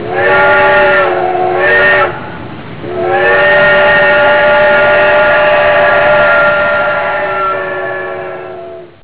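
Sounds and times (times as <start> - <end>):
train: 0.0 - 9.0.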